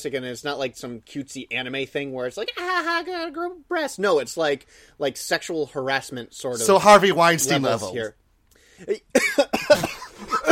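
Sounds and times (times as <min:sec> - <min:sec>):
speech: 0:00.0 - 0:08.2, 0:08.8 - 0:10.5
man coughing: 0:09.1 - 0:10.5.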